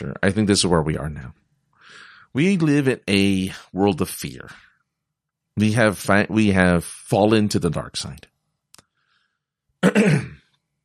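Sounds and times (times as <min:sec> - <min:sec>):
speech: 0:00.1 - 0:01.4, 0:02.3 - 0:04.7, 0:05.6 - 0:08.3, 0:09.8 - 0:10.4
person clearing throat: 0:09.8 - 0:10.5.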